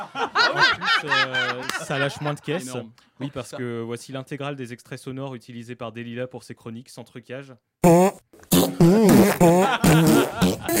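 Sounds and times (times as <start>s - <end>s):
laughter: 0.0s - 3.7s, 9.4s - 10.7s
speech: 0.0s - 8.2s, 8.8s - 10.7s
loud buzzy fart sound effect with wobbling pitch: 7.8s - 10.7s.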